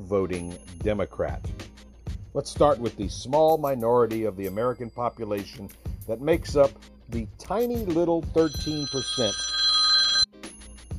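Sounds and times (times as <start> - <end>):
speech: 0.0 - 1.6, 2.3 - 9.5
cell phone ringing: 8.4 - 10.5.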